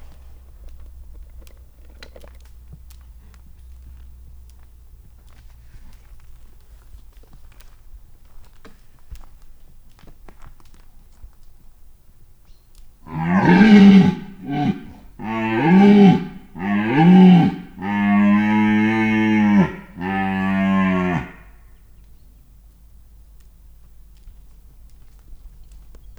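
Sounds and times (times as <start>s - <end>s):
red deer calling at a zoo: 13.1s - 21.4s.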